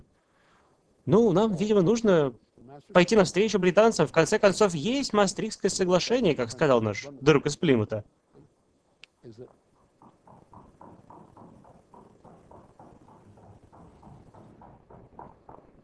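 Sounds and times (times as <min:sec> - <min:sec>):
speech: 0:01.0 - 0:08.2, 0:09.2 - 0:09.6
horse hooves clip-clopping: 0:09.5 - 0:15.8.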